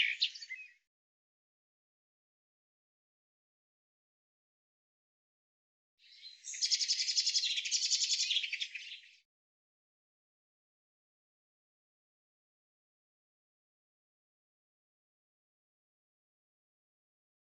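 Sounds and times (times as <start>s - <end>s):
common chaffinch song: 0.0s - 0.9s, 6.0s - 9.2s.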